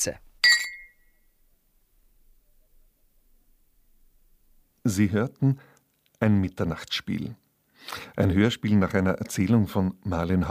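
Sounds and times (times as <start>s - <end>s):
speech: 0.0s - 0.3s, 4.8s - 10.4s
glasses clinking in a toast: 0.4s - 1.2s.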